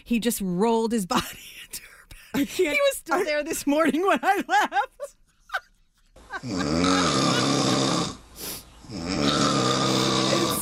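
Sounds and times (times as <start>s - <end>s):
speech: 0.0s - 5.6s, 6.3s - 7.6s, 8.9s - 9.4s
person imitating snoring: 6.4s - 8.2s, 8.8s - 10.5s.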